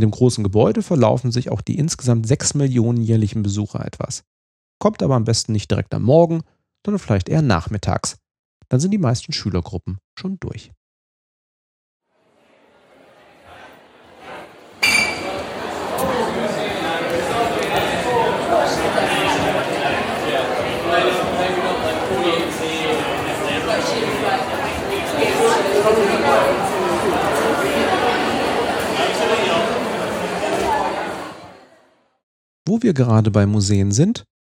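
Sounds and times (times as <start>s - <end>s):
speech: 0.0s - 10.8s, 32.7s - 34.3s
many overlapping voices in Science Museum in London at night: 12.1s - 32.0s.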